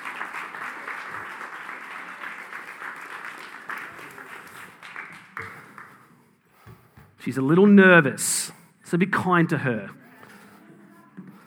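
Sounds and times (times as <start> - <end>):
audience applause in a church: 0.0 - 6.7
speech: 7.2 - 10.0.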